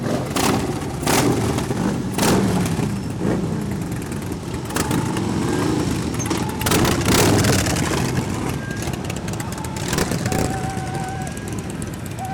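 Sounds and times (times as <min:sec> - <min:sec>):
many motorcycles of a biker activist tour revving as they set off: 0:00.0 - 0:12.3
faint voices: 0:08.2 - 0:12.3.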